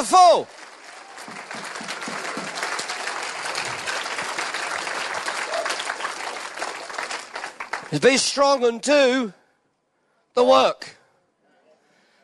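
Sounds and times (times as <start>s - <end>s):
speech: 0.0s - 0.6s, 7.9s - 9.4s, 10.4s - 11.0s
audience clapping and applauding: 0.0s - 8.7s.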